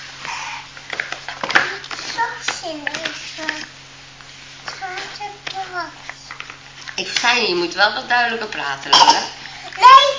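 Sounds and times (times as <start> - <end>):
young child's soft drawn-out breath: 0.2 - 0.8, 9.4 - 9.8
speech: 2.7 - 3.0, 7.0 - 9.9.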